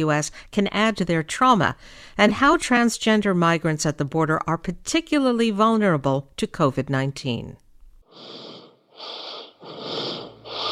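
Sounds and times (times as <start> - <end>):
speech: 0.0 - 7.6
heavy raspy wheezy breathing on a voicemail: 8.0 - 10.7.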